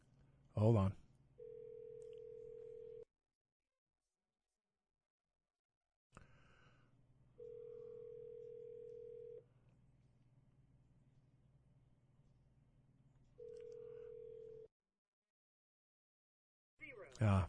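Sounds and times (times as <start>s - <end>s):
speech: 0.6s - 1.0s, 17.2s - 17.4s
telephone ringback tone over the line: 1.4s - 3.1s, 7.4s - 9.4s, 13.4s - 14.7s.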